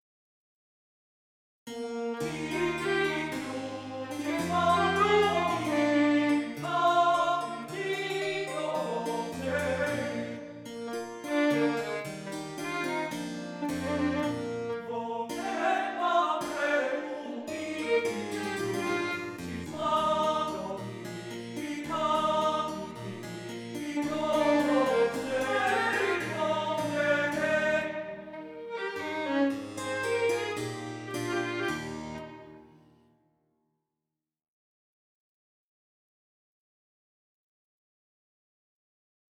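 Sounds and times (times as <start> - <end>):
harpsichord: 1.7 - 32.8
violin: 1.8 - 32.9
voice singing: 2.4 - 10.5, 14.8 - 18.9, 19.5 - 23.3, 24.0 - 28.4.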